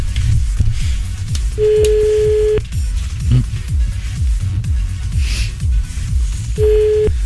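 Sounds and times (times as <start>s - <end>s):
loud rhythmic music with a thumping beat: 0.0s - 7.2s
telephone ringback tone while a call is being placed: 1.6s - 2.6s, 6.6s - 7.2s.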